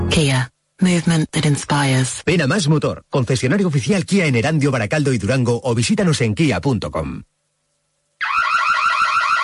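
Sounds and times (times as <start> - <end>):
speech: 0.2 - 7.4
electronic alarm ringing with a rapid warbling pulse: 8.2 - 9.4.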